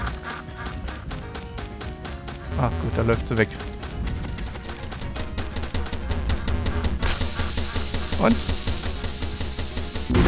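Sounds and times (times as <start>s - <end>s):
duck quacking in a video game: 0.0s - 1.2s, 2.3s - 3.6s, 4.6s - 10.1s
speech: 2.6s - 3.8s, 8.2s - 8.6s.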